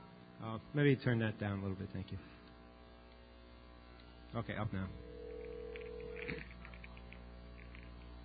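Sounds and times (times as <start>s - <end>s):
speech: 0.7s - 2.4s, 4.3s - 5.1s, 6.3s - 6.5s
low steady telephone dial tone: 5.1s - 6.5s.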